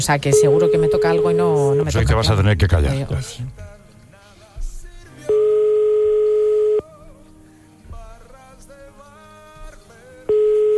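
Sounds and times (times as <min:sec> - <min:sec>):
speech: 0:00.0 - 0:03.7
faint music: 0:00.0 - 0:10.7
telephone ringback tone while a call connects: 0:00.3 - 0:02.3, 0:05.3 - 0:06.9, 0:10.3 - 0:10.7.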